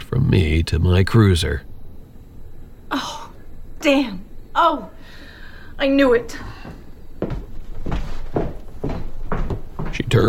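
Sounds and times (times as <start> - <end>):
steady low hum: 0.0 - 10.2
speech: 0.2 - 1.7, 2.9 - 3.2, 3.8 - 5.2, 5.8 - 6.8, 10.0 - 10.2
dull wooden thuds: 6.6 - 10.0.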